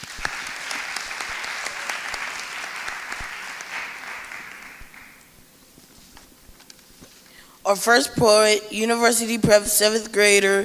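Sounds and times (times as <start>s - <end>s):
room full of people applauding: 0.0s - 5.3s
speech: 7.7s - 10.6s.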